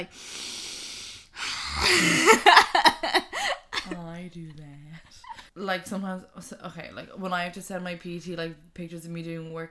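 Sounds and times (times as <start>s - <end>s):
speech: 0.0s - 0.5s, 1.8s - 3.2s, 3.9s - 9.6s
person imitating loud creepy heavy breathing: 0.0s - 2.3s.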